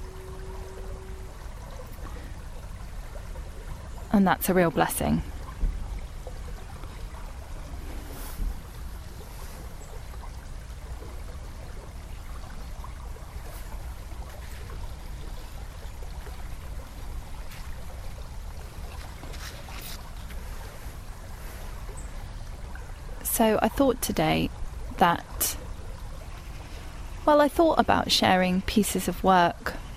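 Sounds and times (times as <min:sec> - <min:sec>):
river water rushing: 0:00.0 - 0:23.6
faint splashes and trickles of river water: 0:00.0 - 0:29.9
speech: 0:04.1 - 0:05.3, 0:23.4 - 0:25.6, 0:27.3 - 0:29.8.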